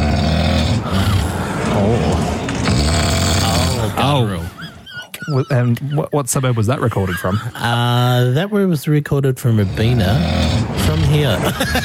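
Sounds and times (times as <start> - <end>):
loud snoring of someone deeply asleep in Rabina: 0.0 - 4.3, 9.5 - 11.8
laughter: 3.8 - 8.6, 11.2 - 11.8
speech: 5.3 - 11.8.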